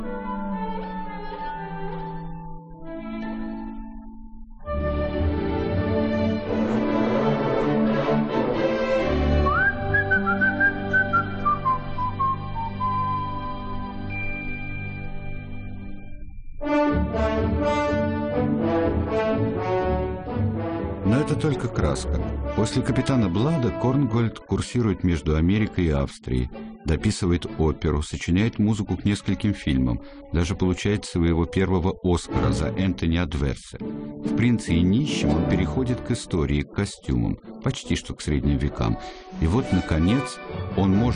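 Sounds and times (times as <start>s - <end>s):
lush loud orchestral music: 0.0s - 16.0s, 16.6s - 41.1s
man whistling an old English tune: 9.4s - 15.0s
speech: 21.4s - 41.1s.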